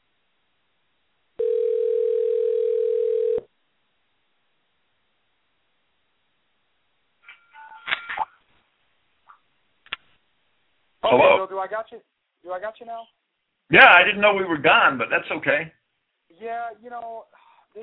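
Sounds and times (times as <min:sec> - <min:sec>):
cell phone dial tone while placing a call: 0:01.4 - 0:03.5
speech: 0:11.1 - 0:15.8, 0:16.4 - 0:17.8.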